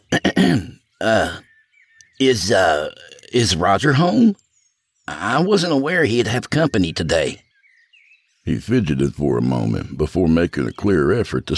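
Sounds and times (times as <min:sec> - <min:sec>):
man clearing throat: 0:00.0 - 0:01.4
speech: 0:01.0 - 0:01.4, 0:02.2 - 0:04.4, 0:05.1 - 0:07.4, 0:08.4 - 0:11.5.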